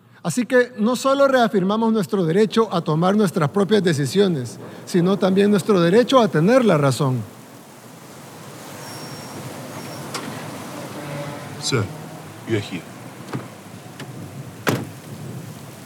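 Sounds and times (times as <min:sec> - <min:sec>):
speech: 0:00.2 - 0:07.4, 0:11.7 - 0:12.9
steady rain: 0:02.3 - 0:15.8
car door thumping: 0:13.1 - 0:15.5.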